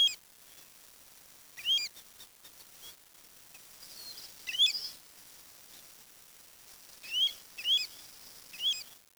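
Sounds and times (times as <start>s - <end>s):
faint steady hiss: 0.0s - 9.1s
bird giving short sharp chirps: 4.0s - 5.0s, 7.1s - 8.0s, 8.6s - 8.8s.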